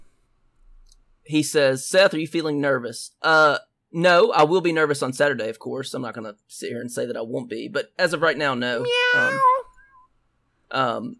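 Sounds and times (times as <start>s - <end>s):
speech: 1.3s - 9.6s, 10.7s - 11.1s
cat meowing: 8.8s - 10.1s.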